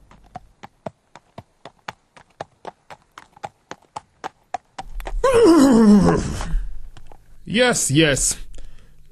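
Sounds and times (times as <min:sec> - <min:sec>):
horse hooves clip-clopping: 0:00.0 - 0:05.4
loud shrill horse whinny sliding downward in pitch: 0:05.1 - 0:06.7
speech: 0:07.5 - 0:08.4.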